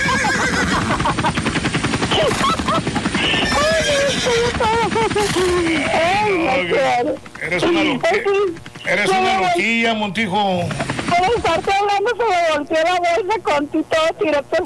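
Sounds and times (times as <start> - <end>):
person imitating a horse's whinny: 0.0 - 0.9, 3.2 - 4.8
laughter: 0.0 - 6.0
speech: 5.1 - 14.6.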